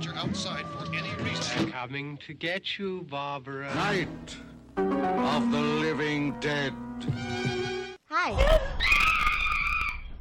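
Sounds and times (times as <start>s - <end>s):
speech: 0.2s - 9.0s
loud shrill scream: 8.4s - 10.1s.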